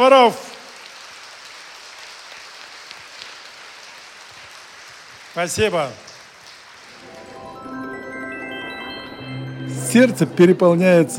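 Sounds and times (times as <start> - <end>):
speech: 0.0 - 0.5, 5.4 - 6.1, 9.7 - 11.1
festival audience clapping: 0.0 - 8.0.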